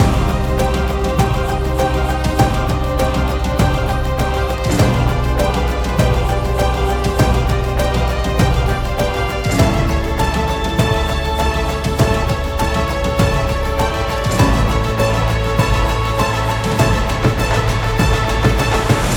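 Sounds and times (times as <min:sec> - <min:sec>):
fantasy music: 0:00.0 - 0:19.1.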